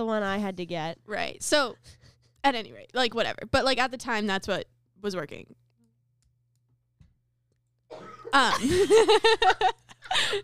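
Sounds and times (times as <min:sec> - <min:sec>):
speech: 0:00.0 - 0:05.6, 0:07.9 - 0:10.4
person coughing: 0:07.9 - 0:08.9.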